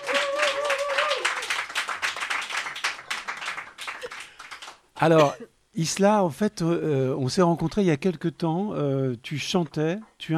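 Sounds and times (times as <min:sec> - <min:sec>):
audience applause, an ovation: 0:00.0 - 0:04.8
speech: 0:05.0 - 0:10.3.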